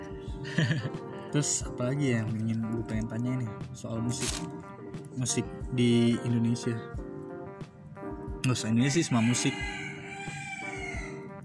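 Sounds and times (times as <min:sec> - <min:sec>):
laughter: 0:00.4 - 0:01.0
speech: 0:00.6 - 0:07.0, 0:08.4 - 0:10.4
rooster crowing at night: 0:08.8 - 0:11.3.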